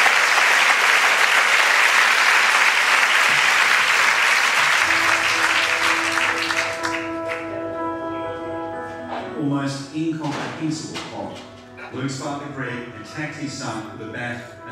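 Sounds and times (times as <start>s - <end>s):
large audience applauding: 0.0s - 7.6s
low musical tone: 4.8s - 14.7s
speech: 10.0s - 14.7s.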